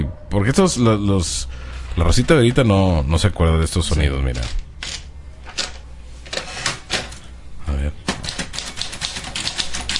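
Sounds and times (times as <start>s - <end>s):
speech: 0.0s - 4.6s
typewriter keys clacking: 8.1s - 9.9s.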